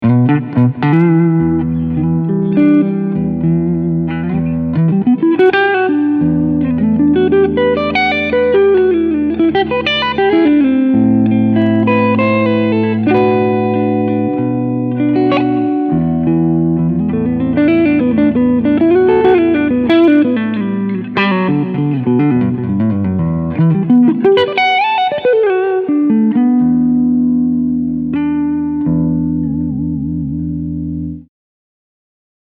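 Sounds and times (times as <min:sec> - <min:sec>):
clean electric guitar on front humbucker pickup: 0:00.0 - 0:31.3.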